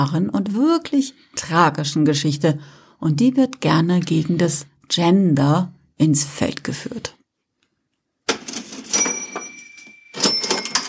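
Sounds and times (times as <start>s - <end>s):
speech: 0.0s - 7.2s
cash register keys and drawer clatter: 8.3s - 10.8s.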